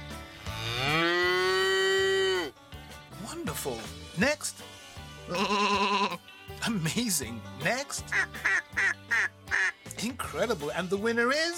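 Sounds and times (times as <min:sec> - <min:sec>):
cow mooing: 0:00.4 - 0:02.5, 0:05.3 - 0:06.2
speech: 0:03.6 - 0:04.7, 0:05.3 - 0:09.0, 0:10.0 - 0:11.5.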